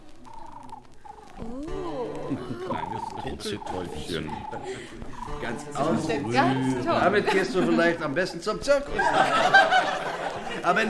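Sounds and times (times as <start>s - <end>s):
brief higher vocal notes: 0.0s - 7.2s
human voice imitating a pigeon's cooing: 0.1s - 6.8s
laughter: 1.6s - 10.8s
speech: 2.3s - 10.8s.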